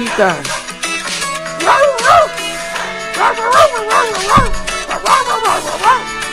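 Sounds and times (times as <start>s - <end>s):
speech: 0.2s - 0.6s
dog barking and yowling along with music: 1.4s - 6.3s.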